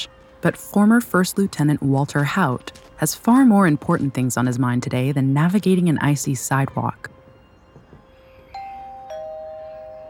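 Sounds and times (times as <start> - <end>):
speech: 0.0 - 7.2
two-tone doorbell chime at the front door of a single-story house: 8.5 - 10.0.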